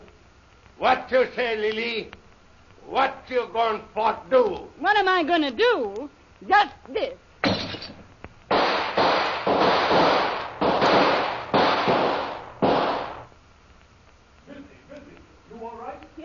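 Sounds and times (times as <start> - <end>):
speech: 0.8 - 2.2, 2.8 - 7.6
gunshots fired through a window: 7.4 - 13.3.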